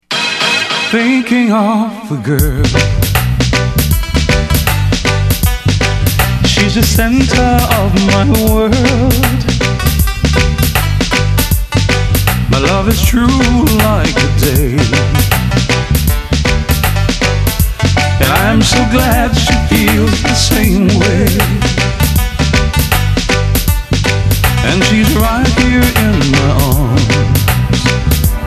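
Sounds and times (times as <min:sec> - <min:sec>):
piano playing: 0:00.0 - 0:01.9, 0:02.6 - 0:28.4
person singing: 0:00.7 - 0:03.0, 0:06.4 - 0:10.0, 0:12.5 - 0:15.2, 0:18.1 - 0:21.9, 0:24.6 - 0:28.4.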